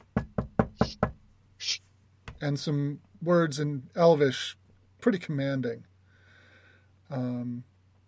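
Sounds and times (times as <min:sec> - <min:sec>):
knocking on a door: 0:00.0 - 0:01.2
low hum: 0:00.0 - 0:08.0
hissy rustle: 0:01.6 - 0:01.9
speech: 0:02.4 - 0:05.9, 0:07.1 - 0:07.7.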